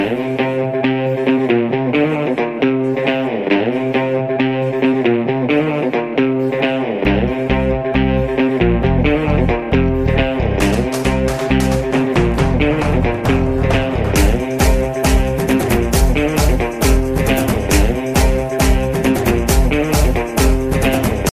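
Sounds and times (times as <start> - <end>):
guitar playing: 0.0 - 21.3
drums playing: 10.6 - 21.3.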